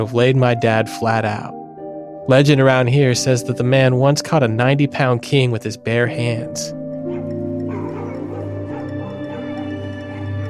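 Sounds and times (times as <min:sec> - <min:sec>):
speech: 0:00.0 - 0:01.6, 0:02.3 - 0:06.8
dogs baying and howling: 0:07.0 - 0:10.4.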